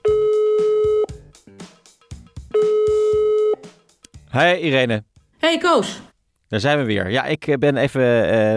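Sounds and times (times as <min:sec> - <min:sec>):
ringback tones of outgoing phone call: 0:00.0 - 0:01.2, 0:02.5 - 0:03.7
speech: 0:04.4 - 0:08.5.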